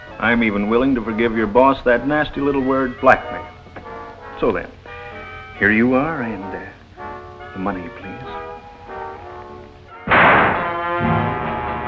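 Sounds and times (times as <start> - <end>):
dramatic orchestral film music: 0.0 - 11.8
speech: 0.2 - 3.6, 4.4 - 4.8, 5.6 - 6.8, 7.6 - 8.4
gunshot from a 1942 noir film: 10.0 - 11.8.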